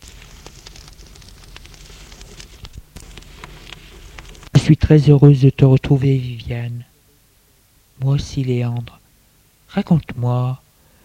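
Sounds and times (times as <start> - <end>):
wood fire crackling in a living-room fireplace: 0.0 - 6.5
speech: 4.7 - 6.9, 8.0 - 9.0, 9.7 - 10.6.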